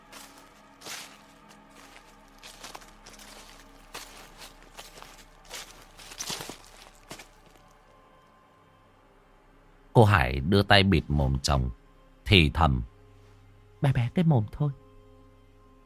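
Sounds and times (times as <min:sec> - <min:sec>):
footsteps on fallen leaves in a back garden at night: 0:00.0 - 0:07.8
speech: 0:10.0 - 0:12.9, 0:13.8 - 0:14.8.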